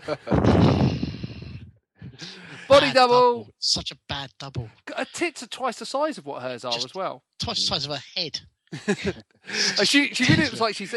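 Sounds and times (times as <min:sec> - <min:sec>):
laughter: 0:00.0 - 0:00.8, 0:02.2 - 0:03.2, 0:08.8 - 0:10.9
speech: 0:00.0 - 0:00.9, 0:02.8 - 0:10.9
heavy breathy exhale blown into a microphone: 0:00.6 - 0:02.9, 0:09.4 - 0:09.8.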